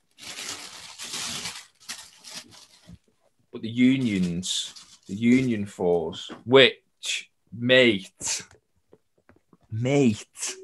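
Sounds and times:
crinkly paper inside a sneaker box rustled and crumpled: 0:00.0 - 0:03.1, 0:03.8 - 0:05.7
speech: 0:03.6 - 0:08.5, 0:09.8 - 0:10.6.

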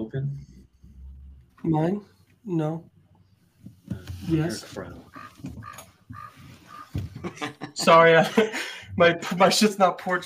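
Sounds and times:
speech: 0:01.6 - 0:02.9, 0:04.3 - 0:05.3, 0:07.2 - 0:10.2
crow cawing outside open window: 0:05.1 - 0:07.1
laughter: 0:06.9 - 0:09.4.

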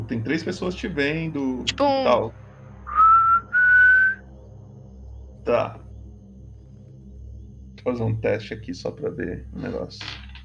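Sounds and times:
speech: 0:00.1 - 0:02.5, 0:05.5 - 0:05.8, 0:07.8 - 0:10.2
person whistling short notes as a discreet signal: 0:02.9 - 0:04.2.

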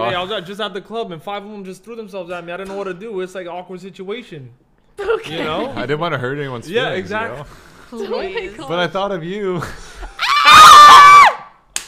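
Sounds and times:
speech: 0:00.1 - 0:09.9
person screaming loudly at high pitch: 0:10.2 - 0:11.4.

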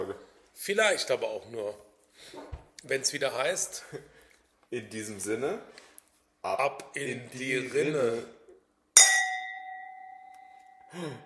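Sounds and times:
speech: 0:00.6 - 0:08.4, 0:10.9 - 0:11.2
glasses of red wine clinking in a toast: 0:09.0 - 0:10.9.

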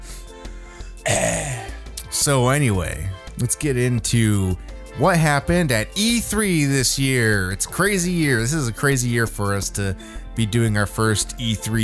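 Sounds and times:
loud cough: 0:01.1 - 0:01.8
throat clearing: 0:01.1 - 0:01.8
speech: 0:02.2 - 0:11.8.

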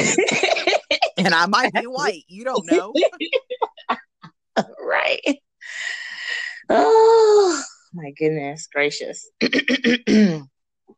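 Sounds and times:
laughter: 0:00.0 - 0:04.1
speech: 0:01.2 - 0:03.4, 0:06.7 - 0:10.5
person clearing throat: 0:09.4 - 0:10.5.

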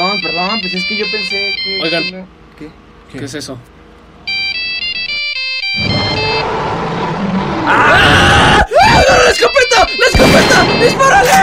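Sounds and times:
loud electronic mobile phone ringtone melody: 0:00.0 - 0:02.2, 0:04.2 - 0:06.6, 0:09.4 - 0:11.4
speech: 0:00.6 - 0:03.8, 0:07.3 - 0:08.4, 0:09.3 - 0:11.4.

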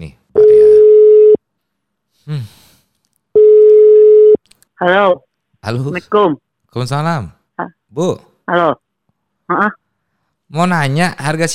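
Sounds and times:
speech: 0:00.0 - 0:00.2, 0:04.8 - 0:08.8, 0:09.5 - 0:09.8, 0:10.5 - 0:11.5
telephone ringback tone during a call: 0:00.4 - 0:01.4, 0:03.4 - 0:04.4.

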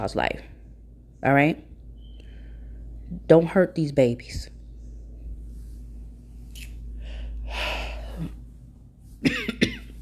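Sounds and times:
speech: 0:00.0 - 0:00.5, 0:01.2 - 0:01.7, 0:03.1 - 0:04.5
person breathing heavily: 0:06.9 - 0:08.5
person clearing throat: 0:09.2 - 0:09.9
short sharp coughs: 0:09.2 - 0:09.9.

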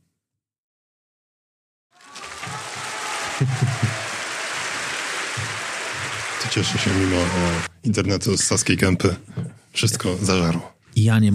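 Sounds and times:
crowd applause sound effect: 0:02.0 - 0:07.7
laughter: 0:02.0 - 0:07.7
speech: 0:03.4 - 0:03.9, 0:06.6 - 0:11.3.

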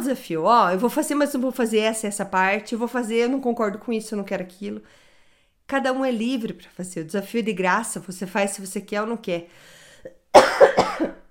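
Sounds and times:
speech: 0:00.0 - 0:05.0, 0:05.7 - 0:11.2
coughing: 0:10.1 - 0:11.2.

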